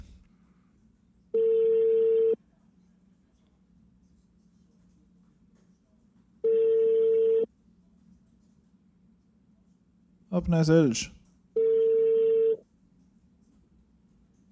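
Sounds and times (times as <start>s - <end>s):
faint hum: 0.0s - 14.4s
electronic ringback tones over a phone line: 1.4s - 2.4s, 6.4s - 7.5s, 11.6s - 12.6s
speech: 10.4s - 11.2s.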